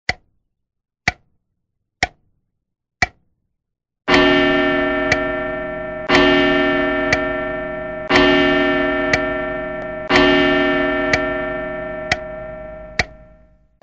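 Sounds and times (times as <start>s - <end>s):
household appliance gong: 4.1s - 13.8s
household appliance ticking: 4.1s - 13.8s.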